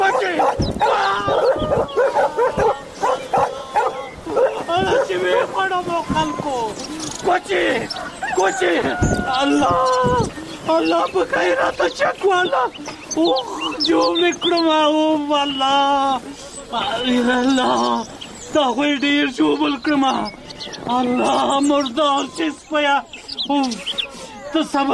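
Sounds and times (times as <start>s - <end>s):
loose dog blocking the middle of a road barking and howling: 0.0s - 5.6s
person talking anxiously: 0.0s - 23.9s.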